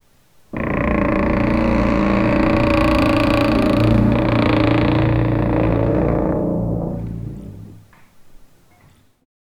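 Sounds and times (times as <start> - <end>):
giant stone door struggling to move: 0.6 - 7.8.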